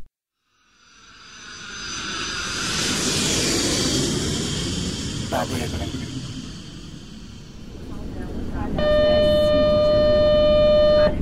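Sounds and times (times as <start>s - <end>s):
sustained blaring tone: 0.4s - 11.2s
ambulance siren wailing: 8.8s - 11.2s.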